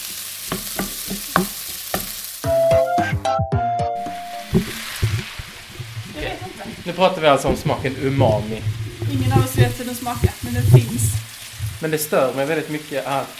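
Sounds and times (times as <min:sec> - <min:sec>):
red onion, garlic, bell pepper and fresh ginger sizzling in a hot Teflon pan: 0:00.0 - 0:02.7, 0:04.0 - 0:13.3
utensil scraping and knocking while stirring in a pan: 0:00.5 - 0:02.2, 0:04.1 - 0:11.8
speech: 0:06.9 - 0:11.2, 0:11.8 - 0:13.3.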